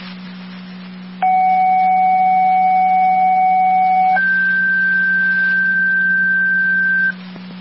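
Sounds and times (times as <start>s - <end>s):
low electrical hum: 0.0s - 7.5s
two-tone radio dispatch paging tones: 1.2s - 7.2s.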